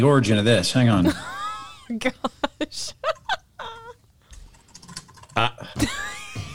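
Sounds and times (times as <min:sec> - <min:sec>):
speech: 0:00.0 - 0:01.3, 0:01.9 - 0:03.0
laughter: 0:00.9 - 0:04.0, 0:05.4 - 0:06.5
typing on a computer keyboard: 0:04.3 - 0:05.4.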